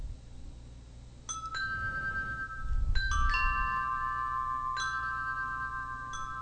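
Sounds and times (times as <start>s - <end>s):
steady low rumble of wind or noise: 0.0s - 6.4s
wind chimes ringing: 1.3s - 6.4s.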